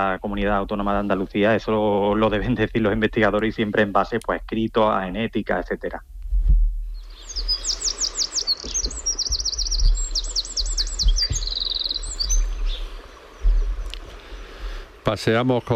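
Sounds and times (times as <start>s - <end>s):
speech: 0.0s - 6.1s, 15.1s - 15.7s
low uneven rumble: 0.0s - 15.7s
Eurasian wren singing in the Sierra de Aracena in Andalusia: 6.9s - 14.5s.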